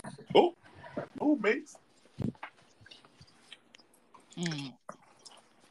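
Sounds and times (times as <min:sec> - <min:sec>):
speech: 0:00.4 - 0:00.6, 0:01.3 - 0:01.8, 0:04.4 - 0:04.8
chewing food while eating: 0:02.8 - 0:05.6.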